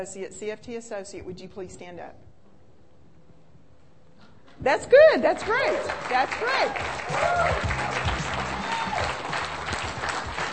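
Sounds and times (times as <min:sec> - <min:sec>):
speech: 0:00.0 - 0:02.3, 0:04.6 - 0:08.2
voices and cheers: 0:04.9 - 0:09.8
audience applauding at a prepaid legal business meeting: 0:05.2 - 0:10.5.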